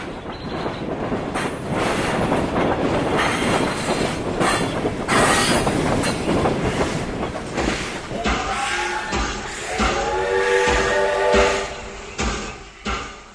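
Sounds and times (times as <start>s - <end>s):
locomotive-hauled train wheels rumbling and clattering on rails while slowing: 0.0s - 13.3s
locomotive-hauled train brakes squealing: 3.2s - 6.2s, 7.8s - 13.3s.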